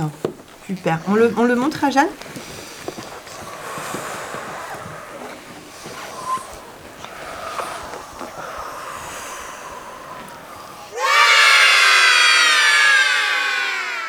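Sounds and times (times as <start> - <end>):
speech: 0.0 - 2.4
children breathing deeply in a lion-breath yoga exercise: 2.1 - 11.1
children shouting together: 10.0 - 14.0.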